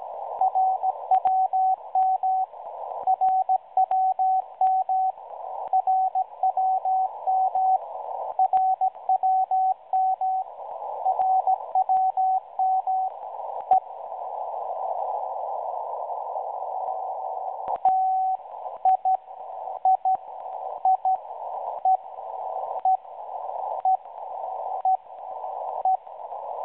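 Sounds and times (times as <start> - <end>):
RWM time signal on 9996 kHz via WebSDR: 0.0 - 26.6.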